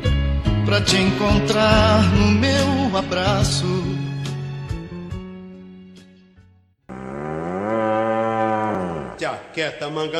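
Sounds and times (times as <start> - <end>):
speech: 0.7 - 4.0, 9.4 - 10.1
ox mooing: 6.9 - 9.4.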